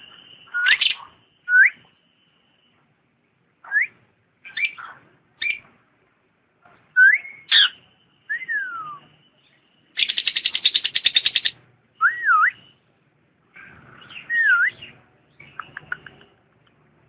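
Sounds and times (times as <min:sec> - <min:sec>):
lovebird singing short rising whistles and squeaky chirps: 0:00.1 - 0:01.8, 0:03.6 - 0:05.7, 0:07.0 - 0:12.8, 0:14.0 - 0:16.3.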